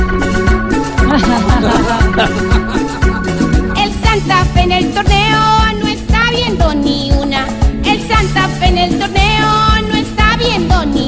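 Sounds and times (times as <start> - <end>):
upbeat salsa-style music track: 0.0 - 11.0
laughter: 1.0 - 3.8.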